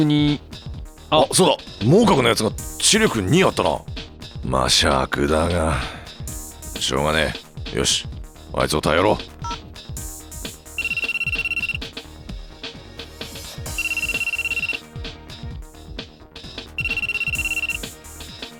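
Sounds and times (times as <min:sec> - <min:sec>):
speech: 0:00.0 - 0:06.0, 0:06.8 - 0:09.3
unanswered telephone ringing: 0:10.8 - 0:11.8, 0:13.7 - 0:14.8, 0:16.8 - 0:17.9.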